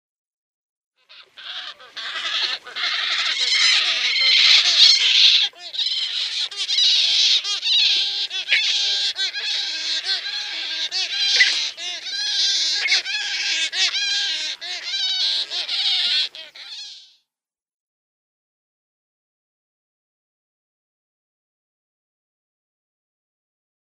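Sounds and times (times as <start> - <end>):
Yellow-billed Stork nestlings calling: 1.2 - 16.9.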